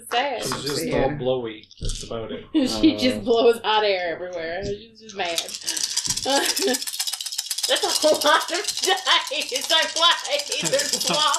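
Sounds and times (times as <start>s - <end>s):
speech: 0.0s - 6.9s, 7.7s - 11.3s
laughter: 0.2s - 3.6s, 6.2s - 6.8s, 10.4s - 11.3s
big handful of dice shaken and rolled: 5.2s - 11.3s.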